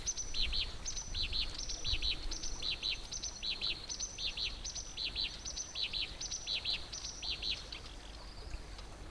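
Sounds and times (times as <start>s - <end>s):
black-browed reed warbler Acrocephalus bistrigiceps singing: 0.0s - 9.0s.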